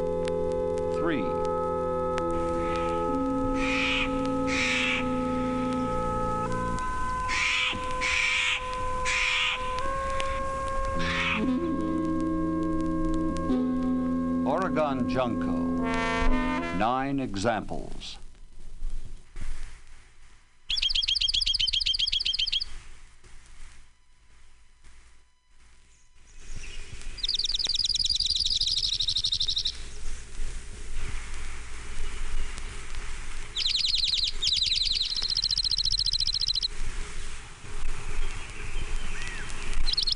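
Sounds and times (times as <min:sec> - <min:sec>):
steady hiss: 0:00.0 - 0:40.1
speech: 0:01.0 - 0:01.5, 0:15.0 - 0:18.2
orange-crowned warbler trilled song: 0:01.2 - 0:10.4, 0:11.0 - 0:11.6, 0:20.7 - 0:22.8, 0:25.9 - 0:30.0, 0:33.5 - 0:36.7, 0:38.1 - 0:40.1.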